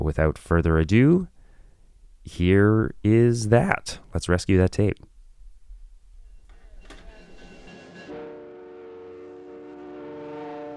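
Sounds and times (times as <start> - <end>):
speech: 0.0 - 1.3, 2.2 - 5.1
passenger train horn blast: 7.7 - 10.7.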